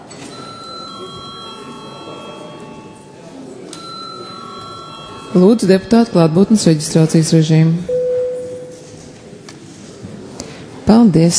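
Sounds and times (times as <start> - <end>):
murmur of a parliament hall: 0.0 - 11.3
two-tone bell chime rung in a parliament chamber: 0.3 - 6.0
speech: 5.3 - 8.0, 10.9 - 11.3.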